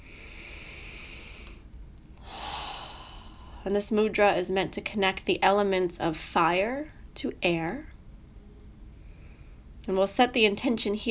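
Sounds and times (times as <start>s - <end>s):
deep breath in and out during a guided breathing exercise: 0.0s - 3.7s, 8.9s - 9.7s
speech: 3.6s - 7.9s, 9.8s - 11.1s.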